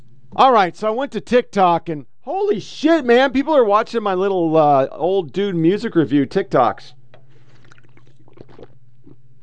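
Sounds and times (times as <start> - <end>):
speech: 0.4 - 7.0
person slurping a drink: 7.2 - 9.4.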